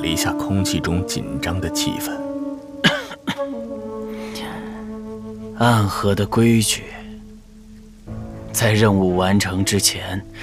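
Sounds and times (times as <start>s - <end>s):
speech: 0.0s - 2.3s, 5.6s - 7.0s, 8.6s - 10.4s
steady tone: 0.0s - 10.4s
light cough: 2.8s - 3.5s.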